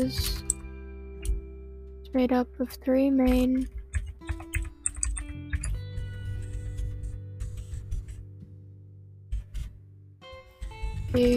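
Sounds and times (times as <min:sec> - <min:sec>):
speech: 0:00.0 - 0:00.4, 0:02.1 - 0:03.8, 0:11.1 - 0:11.3
rapid typing on a computer keyboard: 0:03.3 - 0:08.2.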